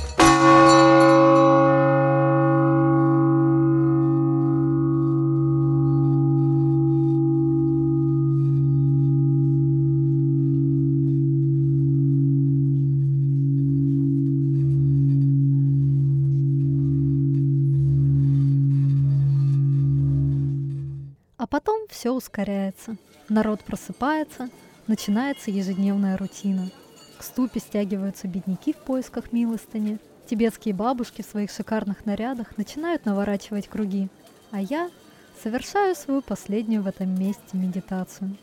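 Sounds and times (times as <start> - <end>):
large temple bell struck: 0.1 - 21.1
speech: 22.0 - 38.4.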